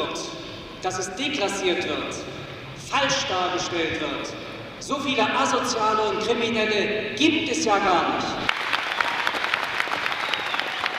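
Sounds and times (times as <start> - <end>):
speech: 0.8 - 8.6
audience applause at a talk: 8.5 - 10.9.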